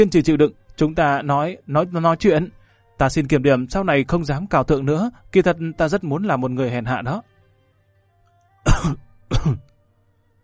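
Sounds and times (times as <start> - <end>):
speech: 0.0 - 7.3, 8.6 - 9.7
woman coughing violently: 8.7 - 9.7.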